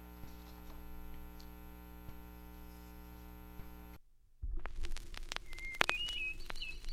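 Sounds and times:
crackly hissy vinyl record playback surface noise: 0.0s - 6.9s
steady electrical hum: 0.0s - 6.9s
recorded bird songs with high whistles and chirps from a vinyl record: 5.4s - 6.9s.

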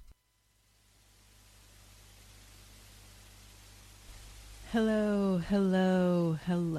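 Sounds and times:
FM radio static hiss between stations: 0.0s - 6.7s
faint low hum: 0.0s - 6.7s
speech: 4.7s - 6.7s.

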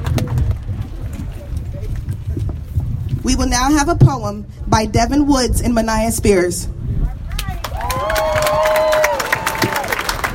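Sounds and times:
crowd noise: 0.0s - 10.3s
speech: 3.2s - 6.8s
audience clapping: 7.4s - 10.3s
high cheering whoop: 7.8s - 10.0s.

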